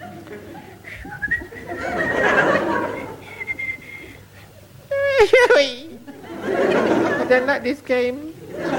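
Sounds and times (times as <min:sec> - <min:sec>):
laughter: 0:00.0 - 0:07.7, 0:08.4 - 0:08.7
faint busy background: 0:00.0 - 0:08.7
person whistling a cheerful bouncy melody: 0:01.0 - 0:02.2, 0:03.4 - 0:04.2
speech: 0:05.2 - 0:05.8, 0:07.3 - 0:08.7.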